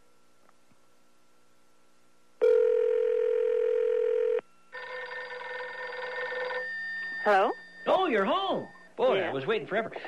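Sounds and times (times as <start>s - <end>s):
telephone ringback tone: 2.4s - 8.8s
speech: 7.3s - 10.0s.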